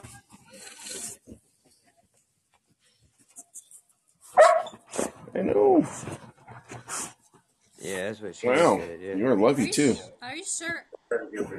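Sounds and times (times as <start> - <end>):
big long-bodied dog barking: 4.4 - 4.8
speech: 5.4 - 6.2, 7.9 - 11.5.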